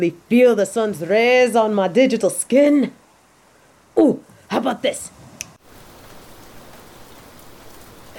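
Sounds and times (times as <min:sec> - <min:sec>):
speech: 0:00.0 - 0:03.0, 0:04.0 - 0:05.2
steady heavy rain pouring: 0:05.6 - 0:08.1.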